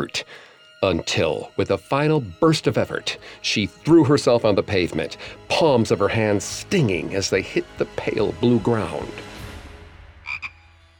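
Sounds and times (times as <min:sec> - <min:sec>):
speech: 0:00.0 - 0:09.3
frog croaking: 0:10.2 - 0:10.6.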